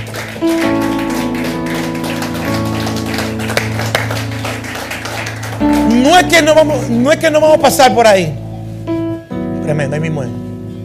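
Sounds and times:
audience applauding loudly: 0.0 - 7.0
organ or keyboard chords: 0.0 - 10.8
speech: 0.4 - 0.8, 6.0 - 8.4, 9.7 - 10.4.

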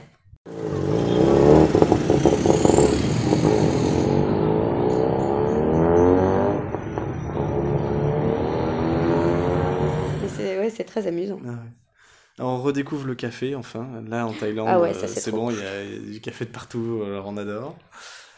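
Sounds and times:
loud street traffic: 0.5 - 10.5
motorbikes, tuk-tuks or small vehicles revving and accelerating: 0.5 - 10.5
speech: 10.9 - 11.8, 12.4 - 18.2
laughter: 14.2 - 16.0.

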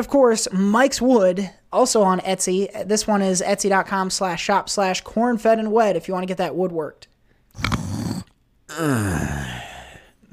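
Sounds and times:
speech: 0.0 - 7.8, 8.8 - 9.6
rough snore-like snort: 7.5 - 10.2
drawn-out groaning vocal sound sliding downward in pitch: 7.6 - 10.3.

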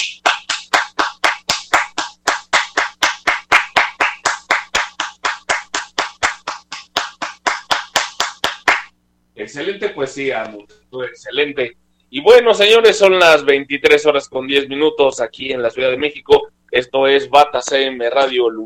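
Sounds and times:
steady rhythmic clapping: 0.0 - 9.0, 17.5 - 18.4
speech: 9.4 - 18.6.

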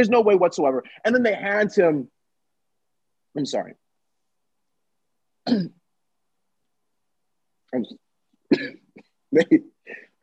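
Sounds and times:
speech: 0.0 - 2.2, 3.4 - 3.8, 5.5 - 5.8, 7.7 - 10.0
person coughing: 5.5 - 5.8, 8.5 - 10.1
throat clearing: 8.5 - 9.6.

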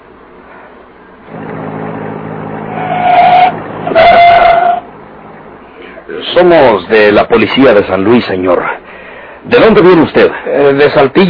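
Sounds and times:
private car engine rumbling and idling: 1.3 - 6.7
car brakes or tires squealing as it slows and pulls over: 1.4 - 4.9
speech: 6.4 - 8.8, 9.4 - 11.2.

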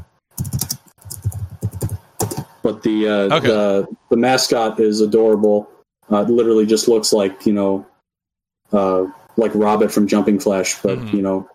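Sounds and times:
typing on a computer keyboard: 0.3 - 2.5
speech: 2.6 - 7.9, 8.7 - 11.5.

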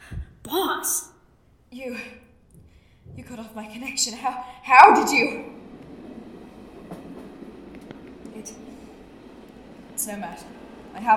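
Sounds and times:
speech: 0.5 - 1.1, 1.7 - 2.2, 3.2 - 5.6, 10.1 - 11.1
train rumbling on rails: 2.5 - 11.1.

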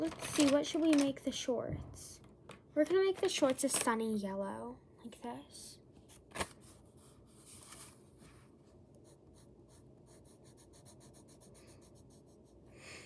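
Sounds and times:
speech: 0.0 - 2.2, 2.8 - 5.8
colored pencil shading across paper: 9.0 - 12.8.

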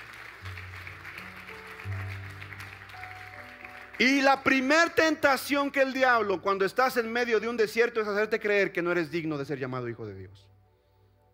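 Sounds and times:
audience applauding: 0.0 - 5.1
speech: 4.0 - 10.5.

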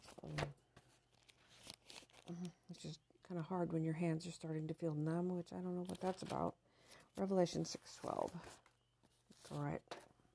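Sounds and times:
thin Bible pages being flipped: 0.0 - 2.6, 5.8 - 10.0
speech: 2.4 - 6.6, 7.2 - 8.6, 9.5 - 9.8.

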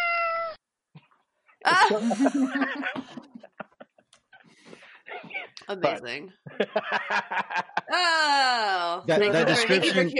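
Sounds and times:
cat yowling outside: 0.0 - 0.6
speech: 1.6 - 3.2, 5.7 - 10.1
laughter: 1.6 - 5.6, 6.5 - 8.2, 9.2 - 10.1.

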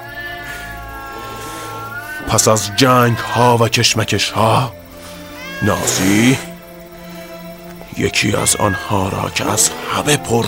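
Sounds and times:
cat wailing meow: 0.0 - 3.6, 5.2 - 6.6, 8.0 - 10.4
speech: 2.3 - 4.8, 5.6 - 6.5, 8.0 - 10.4.

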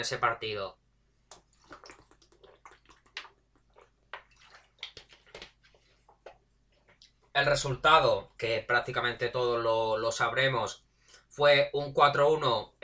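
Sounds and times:
speech: 0.0 - 0.8, 7.4 - 10.8, 11.4 - 12.8
person sipping water: 1.3 - 7.3
small wet clicks, slurps and splashy ticks: 1.3 - 7.3.

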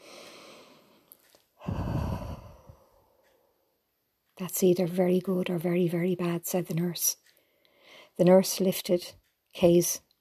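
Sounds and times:
sudden deep breath drawn in a quiet room: 0.0 - 3.6, 7.4 - 8.2
speech: 4.4 - 7.2, 8.2 - 10.1.

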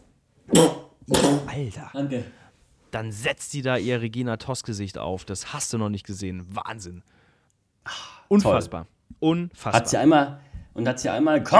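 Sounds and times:
person sneezing: 0.5 - 1.6
speech: 0.5 - 7.2, 7.8 - 11.5.

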